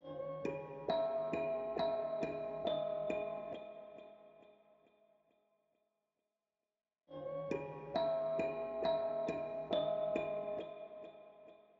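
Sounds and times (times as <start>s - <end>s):
136 BPM C sharp minor bells melody loop: 0.0s - 4.0s, 7.2s - 11.1s.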